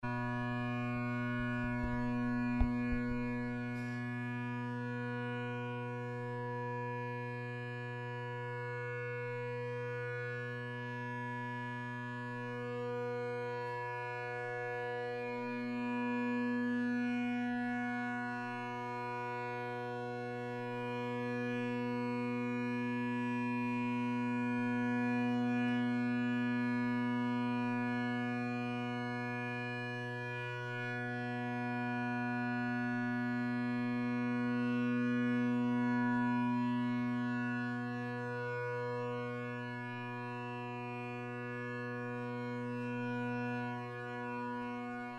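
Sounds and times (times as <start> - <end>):
bagpipe: 0.0 - 45.1
bass drum: 1.3 - 3.6.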